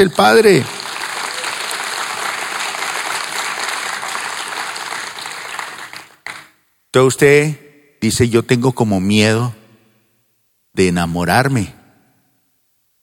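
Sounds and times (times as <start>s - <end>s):
speech: 0.0s - 0.8s, 6.9s - 9.6s, 10.8s - 11.8s
audience applauding: 0.0s - 6.6s.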